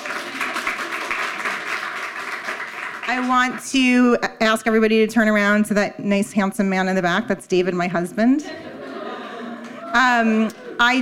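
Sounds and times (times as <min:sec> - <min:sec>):
audience applause: 0:00.0 - 0:03.4
speech: 0:03.1 - 0:08.6, 0:10.0 - 0:11.0
laughter: 0:08.4 - 0:11.0.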